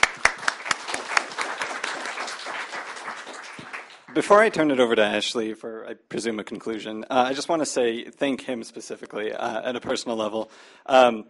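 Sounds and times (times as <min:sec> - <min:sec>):
moderately sized audience applauding at a panel discussion: 0:00.0 - 0:04.5
speech: 0:04.2 - 0:11.2.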